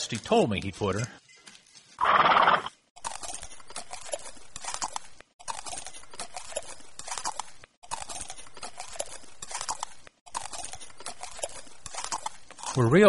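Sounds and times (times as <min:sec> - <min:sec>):
speech: 0:00.0 - 0:01.2, 0:12.8 - 0:13.0
horse whinnying: 0:02.0 - 0:02.7.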